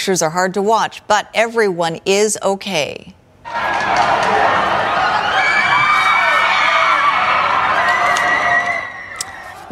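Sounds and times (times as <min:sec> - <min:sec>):
speech: 0:00.0 - 0:04.6
cheering-like whoops from onlookers: 0:03.5 - 0:09.6
crowd of onlookers in southeastern France shouting and screaming at boys to jump: 0:03.5 - 0:09.6.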